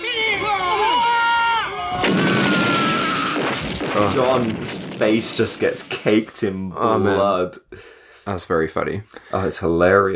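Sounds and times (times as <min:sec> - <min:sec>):
wavering high tonal whine: 0:00.0 - 0:03.8
loud roaring explosion blast with crackling tail: 0:01.9 - 0:06.6
speech: 0:04.0 - 0:10.1.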